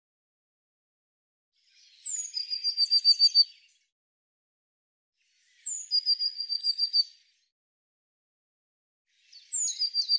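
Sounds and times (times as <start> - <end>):
Eurasian blue tit song: 1.6 - 3.9, 5.3 - 7.4, 9.1 - 10.1.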